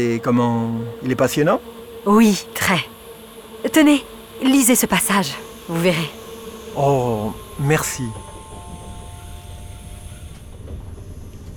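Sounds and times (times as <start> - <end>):
speech: 0.0 - 2.9, 3.7 - 6.2, 6.8 - 8.3
train pulling into its terminus station at Nîmes: 0.0 - 11.5.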